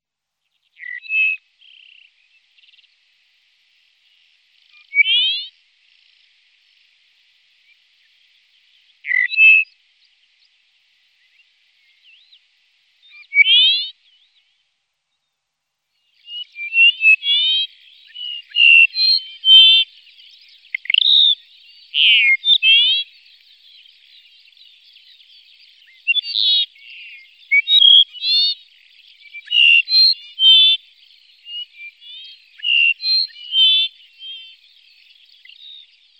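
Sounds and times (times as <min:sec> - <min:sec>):
Dupont's lark: 0:00.8 - 0:02.2, 0:04.7 - 0:05.5, 0:09.0 - 0:09.7, 0:13.1 - 0:14.0, 0:16.3 - 0:20.0, 0:20.7 - 0:23.4, 0:25.8 - 0:30.8, 0:31.4 - 0:34.6.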